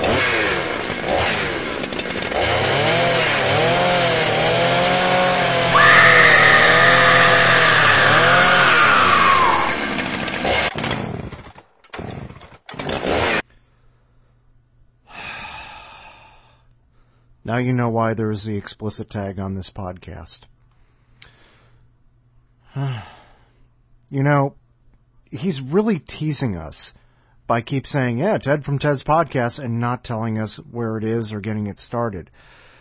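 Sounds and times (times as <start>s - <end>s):
chainsaw revving: 0.0s - 13.4s
speech: 17.5s - 20.5s, 22.8s - 23.2s, 24.1s - 24.6s, 25.3s - 32.6s.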